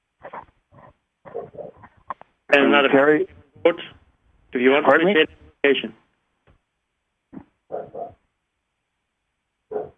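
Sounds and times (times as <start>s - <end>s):
neighbor's dog barking: 1.2s - 1.9s, 7.6s - 8.3s, 9.7s - 9.9s
speech: 2.5s - 6.0s.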